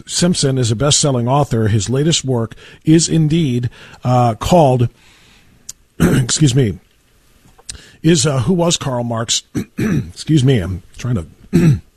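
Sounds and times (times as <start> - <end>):
speech: 0.0 - 5.2, 6.0 - 6.9, 7.7 - 11.9
person clearing throat: 6.0 - 6.4, 9.5 - 10.2, 11.5 - 11.9
person coughing in short voiced bursts: 6.0 - 6.4, 9.5 - 10.2, 11.5 - 11.9.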